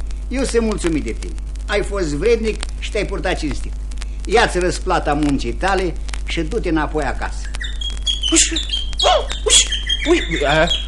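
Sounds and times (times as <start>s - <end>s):
steady low hum: 0.0s - 10.8s
speech: 0.3s - 7.6s, 8.3s - 10.8s
bird chirping: 7.2s - 10.8s.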